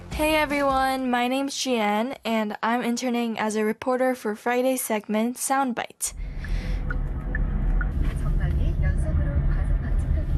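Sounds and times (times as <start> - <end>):
speech: 0.2 - 6.2
moving car engine and road noise: 6.2 - 10.3.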